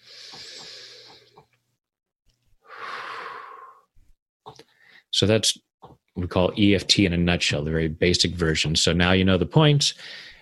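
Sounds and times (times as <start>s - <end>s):
deep breathing during a guided tapping exercise: 0.0s - 1.5s, 2.6s - 4.0s, 10.0s - 10.4s
speech: 5.2s - 10.3s.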